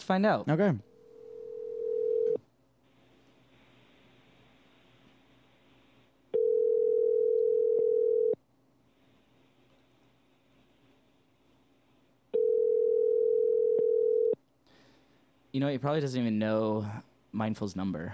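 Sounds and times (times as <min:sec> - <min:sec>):
speech: 0:00.1 - 0:00.9, 0:15.6 - 0:18.1
phone ringback tone while calling: 0:01.0 - 0:02.4, 0:06.4 - 0:08.4, 0:12.4 - 0:14.4.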